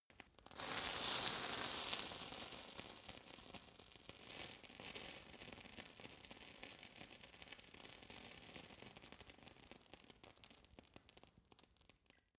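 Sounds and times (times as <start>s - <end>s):
fire torch sizzling: 0.5s - 5.6s.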